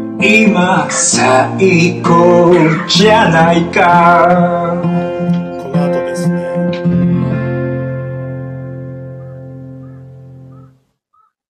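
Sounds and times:
song: 0:00.0 - 0:10.4
speech: 0:00.2 - 0:05.4
crow cawing: 0:09.0 - 0:11.4.

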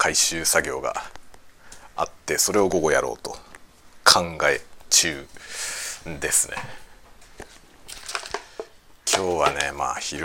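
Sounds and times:
speech: 0:00.0 - 0:01.2, 0:02.0 - 0:03.5, 0:04.1 - 0:06.8, 0:09.2 - 0:10.2
cup noodle seasoning and powdered soup sachets crinkling: 0:07.8 - 0:10.2.

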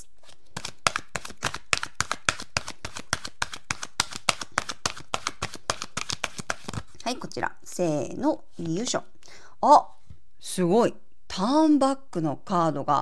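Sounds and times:
message cards shuffled by hand: 0:00.2 - 0:07.0
speech: 0:07.1 - 0:13.0.

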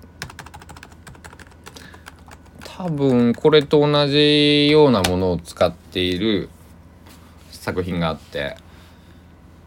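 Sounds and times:
typing on a computer keyboard: 0:00.2 - 0:03.8
speech: 0:02.8 - 0:06.6, 0:07.7 - 0:08.6.

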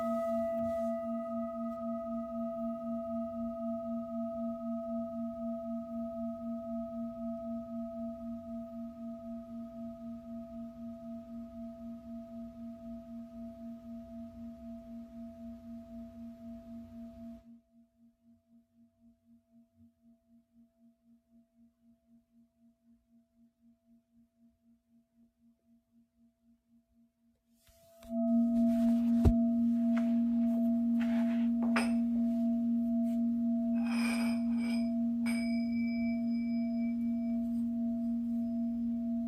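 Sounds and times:
singing bowl humming a steady low tone: 0:00.0 - 0:17.6, 0:27.9 - 0:39.2.

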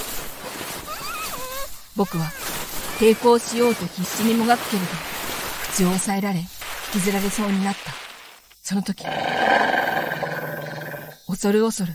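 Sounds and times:
speech: 0:02.0 - 0:05.2, 0:05.8 - 0:08.0, 0:08.7 - 0:09.8, 0:11.3 - 0:11.9
large dog growling: 0:09.0 - 0:11.2.

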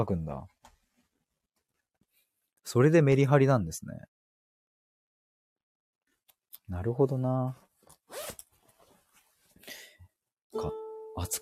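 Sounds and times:
speech: 0:00.0 - 0:00.6, 0:02.6 - 0:04.2, 0:06.7 - 0:08.4, 0:10.5 - 0:11.4
soft jacket fabric rustling: 0:07.6 - 0:09.6
jacket zipper pulled open as the jacket is taken off: 0:08.0 - 0:08.9.

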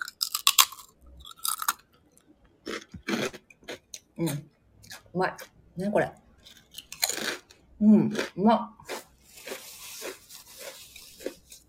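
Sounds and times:
Dutch senbei rice cracker, ume-kombu flavour, crunching and chewing: 0:00.0 - 0:01.8, 0:06.4 - 0:07.6, 0:08.9 - 0:11.6
speech: 0:04.2 - 0:04.5, 0:05.2 - 0:06.2, 0:07.8 - 0:08.8.

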